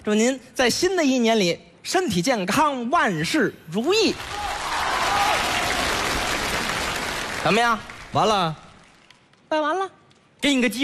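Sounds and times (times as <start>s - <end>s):
speech: 0.0s - 4.5s, 7.4s - 8.6s, 9.5s - 10.8s
audience applauding at a live comedy crosstalk performance: 4.2s - 9.1s.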